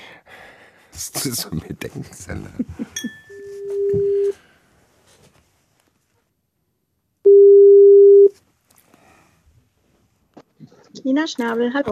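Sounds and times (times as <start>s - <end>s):
speech: 1.0s - 3.2s, 11.1s - 11.9s
electronic telephone ringback tone of an outgoing call: 3.2s - 4.4s, 7.3s - 8.3s.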